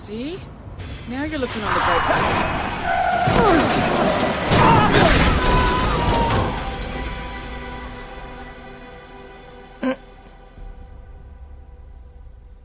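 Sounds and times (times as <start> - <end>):
speech: 0.0 - 4.4
rumble: 0.0 - 8.6, 10.3 - 12.6
vehicle crash: 0.8 - 8.4
screeching grinding metal: 1.4 - 7.2.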